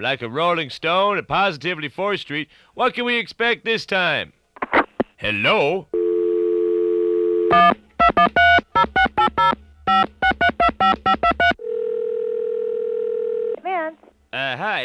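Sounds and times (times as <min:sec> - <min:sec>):
speech: 0:00.0 - 0:04.4, 0:05.2 - 0:05.9, 0:07.5 - 0:07.8, 0:14.6 - 0:14.8
telephone dial tone after call disconnects: 0:06.0 - 0:08.6, 0:10.8 - 0:13.6
telephone dialing beeps: 0:06.0 - 0:13.5.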